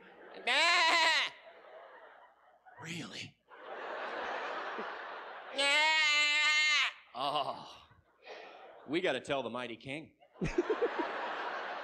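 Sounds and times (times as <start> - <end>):
laughter: 0.0 - 9.3, 10.2 - 11.8
person imitating a sheep bleating: 0.5 - 1.4, 5.6 - 7.8
speech: 2.8 - 3.4, 8.9 - 11.0.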